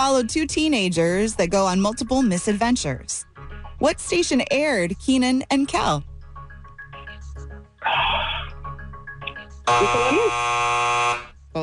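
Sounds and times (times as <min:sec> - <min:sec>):
speech: 0:00.0 - 0:06.1, 0:09.7 - 0:11.6
loud harsh quiz-show buzzer: 0:09.7 - 0:11.4.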